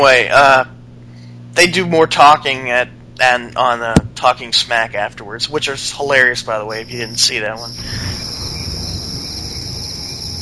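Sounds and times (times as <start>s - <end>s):
speech: 0.0s - 0.8s, 1.6s - 8.3s
crickets chirping: 6.6s - 10.4s.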